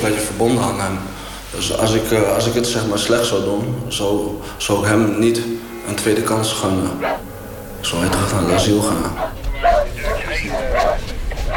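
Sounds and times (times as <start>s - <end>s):
speech: 0.0s - 7.2s, 7.8s - 9.8s
murmuring voices: 4.3s - 11.5s
dog barking in short yips: 8.5s - 11.5s.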